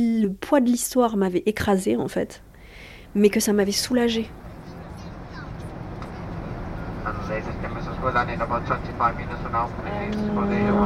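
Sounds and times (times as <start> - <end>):
speech: 0.0 - 2.5, 3.1 - 4.4, 8.0 - 10.8
airplane cabin engine hum: 4.0 - 10.8.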